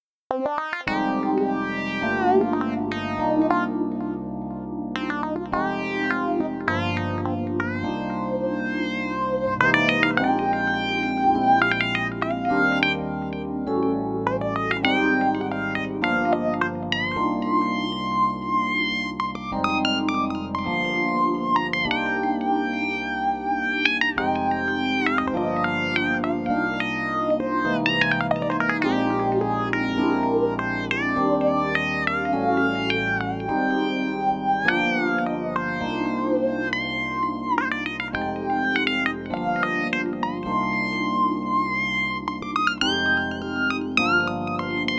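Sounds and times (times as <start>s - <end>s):
synth lead: 0.3s - 44.9s.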